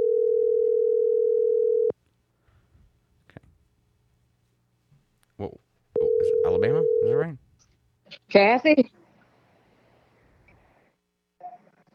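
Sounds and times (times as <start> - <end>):
telephone ringback tone on speakerphone: 0.0 - 1.9, 6.0 - 7.2
speech: 8.3 - 9.0.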